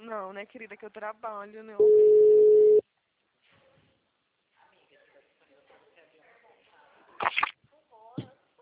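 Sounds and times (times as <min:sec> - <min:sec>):
speech: 0:00.1 - 0:02.8
telephone ringing tone while calling a client: 0:01.8 - 0:02.8.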